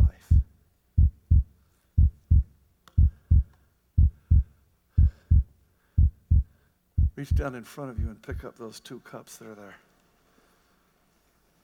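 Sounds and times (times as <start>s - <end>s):
deep thumping heartbeat in lub-dub pairs: 0.0s - 8.5s
speech: 7.2s - 9.9s.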